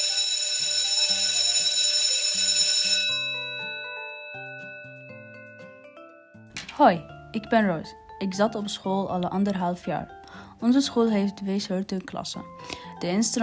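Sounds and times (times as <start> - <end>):
loud electric school bell ringing: 0.0 - 6.4
series of clear chime tones in a stepping melody: 0.0 - 6.5
speech: 6.8 - 13.4.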